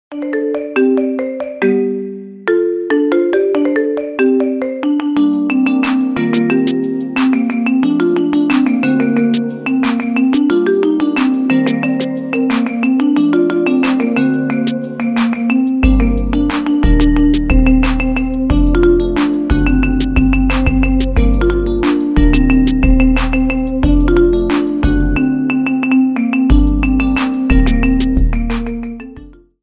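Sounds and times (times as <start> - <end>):
Android marimba ringtone: 0.1 - 29.6.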